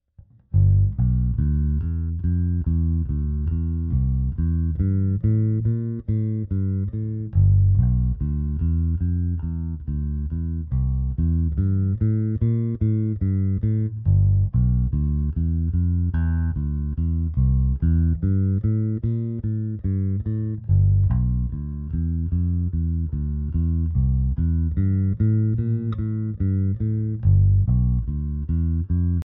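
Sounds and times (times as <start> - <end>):
bass through an amplifier recorded at the cone center: 0.1 - 29.3.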